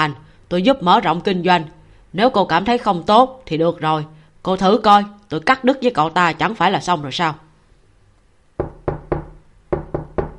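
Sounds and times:
speech: 0.0 - 7.4
knocking on a bathroom door: 8.6 - 10.3.

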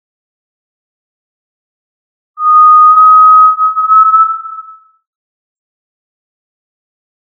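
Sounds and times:
tinamou giving a long pure whistle: 2.4 - 4.9.

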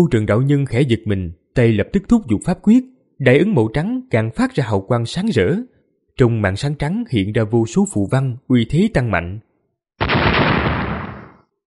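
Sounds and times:
speech: 0.0 - 10.4
thunderous explosion: 10.0 - 11.4.

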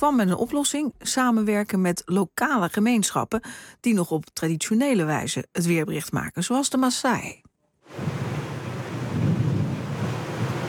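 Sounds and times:
speech: 0.0 - 8.2
strong wind blowing at a weather station in Kajiado, Kenya: 7.9 - 10.6.

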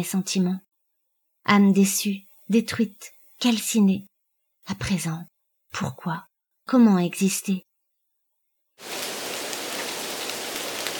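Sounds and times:
speech: 0.0 - 0.7, 1.4 - 4.1, 4.7 - 7.7, 8.8 - 9.0
rain drumming on windows: 8.8 - 10.9
violent downpour of rain: 8.8 - 10.9.

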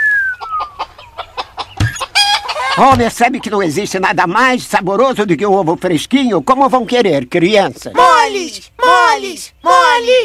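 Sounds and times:
chickens clucking in a backyard cage: 0.3 - 3.6
speech: 2.8 - 10.2.

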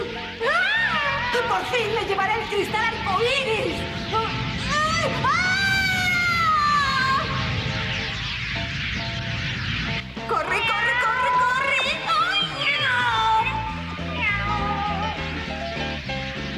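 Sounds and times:
steady music: 0.0 - 16.5
speech: 1.7 - 4.4
cat meowing: 12.6 - 15.2.

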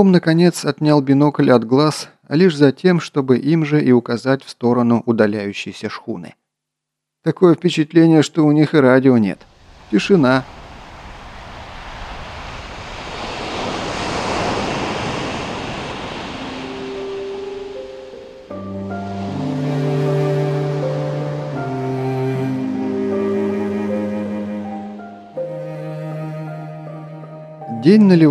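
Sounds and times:
speech: 0.0 - 6.4, 7.2 - 10.6, 27.9 - 28.2
light breeze: 9.4 - 18.6
Pacific Ocean waves: 9.4 - 27.6
steady musical tones: 16.7 - 28.2.

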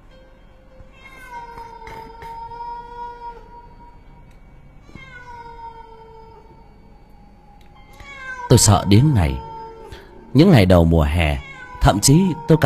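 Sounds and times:
stray cat yowling on a tiled roof: 0.9 - 4.0, 4.8 - 10.4, 11.2 - 12.6
speech: 8.5 - 9.4, 10.3 - 12.6.

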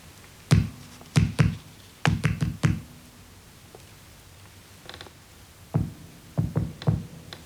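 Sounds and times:
knocking on a wall as tapped signals: 0.5 - 2.9, 5.8 - 7.1.

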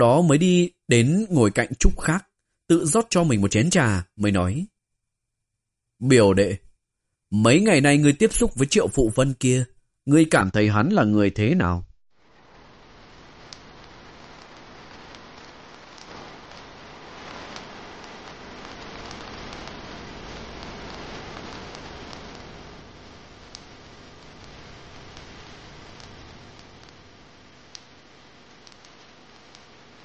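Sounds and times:
speech: 0.0 - 4.7, 6.0 - 6.6, 7.3 - 11.9
rain falling outside a temple: 13.1 - 27.2.

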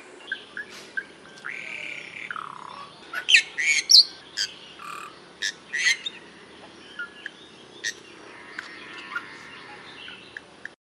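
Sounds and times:
Bali myna whistled slur, harsh buzzy notes and chirps: 0.3 - 10.4.

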